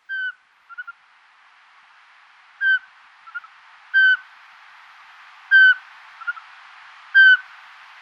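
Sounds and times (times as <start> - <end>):
little owl: 0.0 - 1.0, 2.6 - 4.2, 5.5 - 6.5, 7.2 - 7.5.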